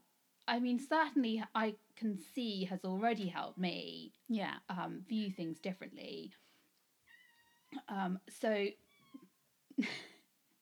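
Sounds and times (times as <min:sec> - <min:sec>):
speech: 0:00.5 - 0:06.5, 0:07.7 - 0:08.8, 0:09.8 - 0:10.1
cat meowing loudly: 0:07.1 - 0:07.8.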